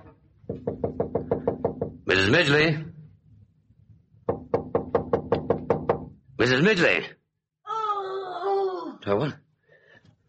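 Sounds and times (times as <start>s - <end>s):
rapid knocking on a bathroom door: 0.4s - 2.1s, 4.2s - 6.2s
speech: 2.1s - 2.9s, 6.4s - 7.2s, 9.0s - 9.4s.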